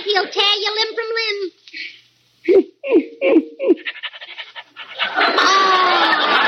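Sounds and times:
speech: 0.2 - 1.6
St. Bernard panting: 3.8 - 5.2
laughter: 4.8 - 6.4.

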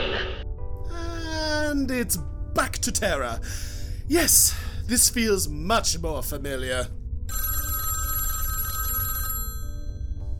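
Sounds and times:
low rumbling background: 0.0 - 7.5
speech: 1.9 - 7.0
telephone bell ringing: 7.3 - 10.3.

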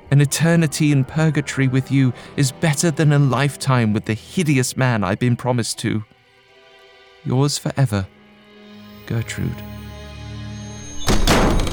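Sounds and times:
speech: 0.1 - 6.2, 7.2 - 8.2, 9.1 - 9.7
bedroom door slamming shut: 10.9 - 11.7.

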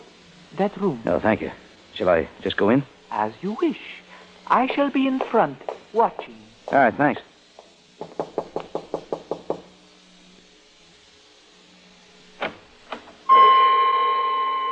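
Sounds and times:
speech: 0.5 - 7.3
knocking on a door: 8.0 - 9.7
sustained ringing chord: 13.3 - 14.6.

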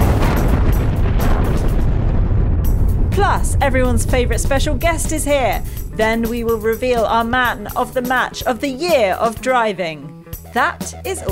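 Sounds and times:
explosion sound effect with rumbling roar: 0.0 - 8.3
crackling bursts: 0.0 - 8.8
speech: 3.6 - 11.3.

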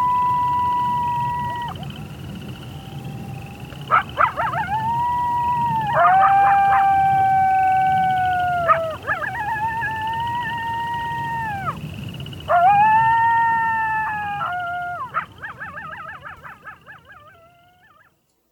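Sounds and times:
coyotes howling: 0.0 - 18.2.

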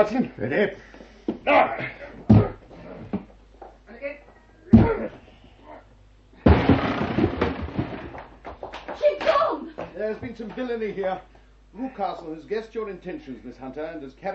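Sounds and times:
speech: 0.0 - 2.5, 10.0 - 14.3
person grunting: 1.5 - 2.6, 4.7 - 5.8
heavy shoulder blows thudding against a wooden door: 2.3 - 2.6, 4.7 - 5.1
wooden door giving way in a splintering crash: 6.4 - 8.3.

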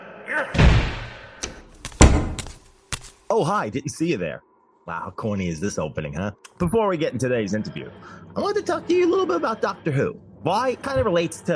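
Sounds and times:
speech: 0.3 - 0.9, 3.3 - 11.5
door pushed shut with a heavy thud: 0.6 - 2.6
door clicks and knocks as it latches: 1.4 - 2.6.

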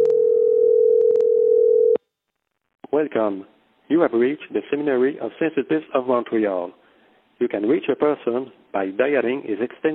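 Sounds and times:
telephone ringback tone on an outgoing call: 0.0 - 2.0
speech: 3.0 - 6.8, 7.4 - 9.9.

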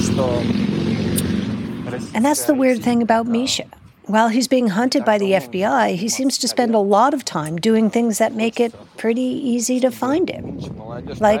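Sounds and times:
motorcycles rumbling past on a street: 0.0 - 2.9
faint murmur of voices: 0.0 - 11.3
speech: 0.2 - 1.1, 1.9 - 11.3.

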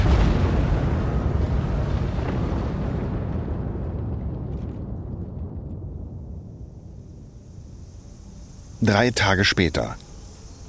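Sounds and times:
heavy bomb explosion during an air raid: 0.0 - 7.3
speech: 8.8 - 10.0.

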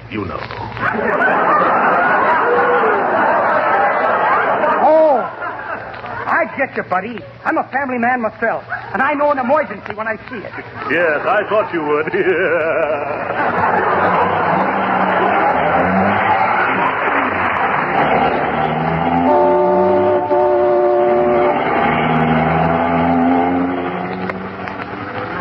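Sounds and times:
speech: 0.1 - 2.2, 6.4 - 14.6
laughter: 0.6 - 7.7, 8.5 - 20.3, 24.9 - 25.3
car engine and road noise speeding through traffic: 13.0 - 25.3
sustained tonal notes: 13.8 - 24.1.

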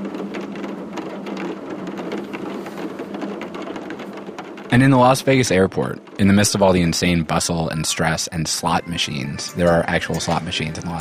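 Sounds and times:
steady dense rain pattering on a surface: 0.0 - 8.7
speech: 4.7 - 11.0.

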